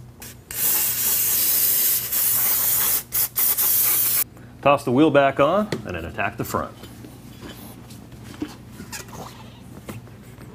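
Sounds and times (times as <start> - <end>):
brake cleaner aerosol spraying on rotor: 0.5 - 4.2
speech: 4.6 - 6.9.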